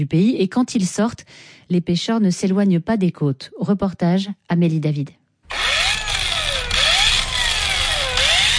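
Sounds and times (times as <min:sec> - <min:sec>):
speech: 0:00.0 - 0:05.2
broad harbour noise: 0:00.0 - 0:05.6
motor revving in a harbour: 0:05.5 - 0:08.5.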